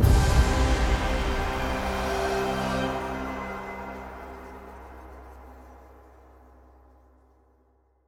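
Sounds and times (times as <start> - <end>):
music outro: 0.0 - 6.3.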